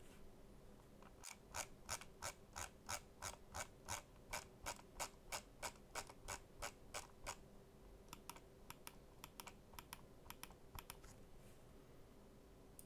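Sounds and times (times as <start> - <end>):
computer mouse wheel scrolling: 1.1 - 7.4, 8.1 - 11.2.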